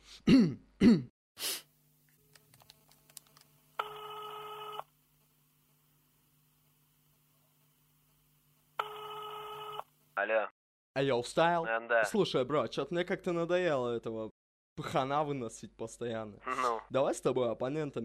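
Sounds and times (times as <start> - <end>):
person clearing throat: 0.2 - 1.1, 16.5 - 16.9
speech: 0.3 - 1.1, 11.0 - 18.0
electronic telephone ringing tones: 3.8 - 4.9, 8.8 - 9.9.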